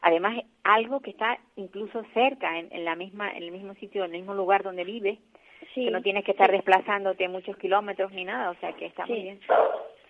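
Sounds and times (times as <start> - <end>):
speech: 0.1 - 9.9
dog barking: 9.5 - 10.0.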